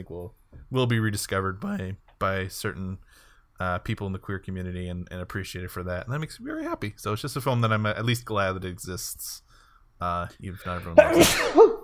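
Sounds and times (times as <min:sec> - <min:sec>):
speech: 0:00.0 - 0:11.8
loud sneeze: 0:11.0 - 0:11.8.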